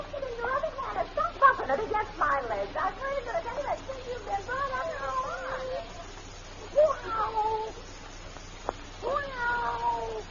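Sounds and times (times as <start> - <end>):
low hum: 0.0 - 10.2
cat meowing: 9.0 - 10.2.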